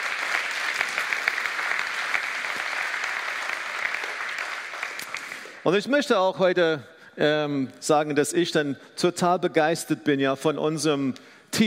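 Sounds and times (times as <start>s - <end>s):
community audience applause: 0.0s - 5.6s
speech: 5.6s - 11.6s.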